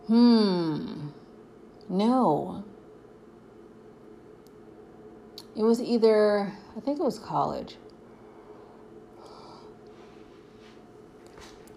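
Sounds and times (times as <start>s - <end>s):
person yawning: 0.0s - 1.2s
speech: 0.1s - 0.5s, 1.9s - 2.6s, 5.6s - 7.8s.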